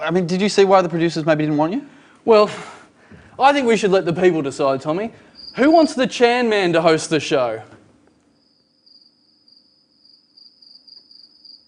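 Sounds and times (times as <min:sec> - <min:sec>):
speech: 0:00.0 - 0:02.7, 0:03.4 - 0:07.8
crickets chirping: 0:05.1 - 0:06.1, 0:08.0 - 0:11.6.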